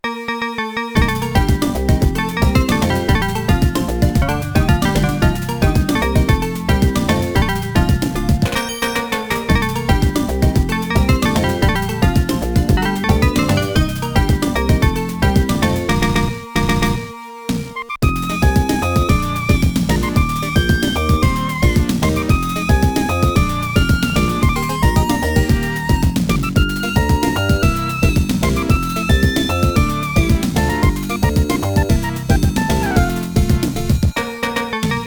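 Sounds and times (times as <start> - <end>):
YM2612 FM synthesizer chip music: 1.0 - 17.2, 17.8 - 35.0.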